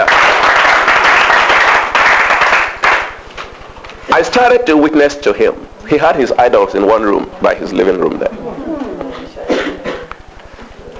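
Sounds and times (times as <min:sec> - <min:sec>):
crowd applauding in a room: 0:00.0 - 0:03.6
speech: 0:04.2 - 0:08.4.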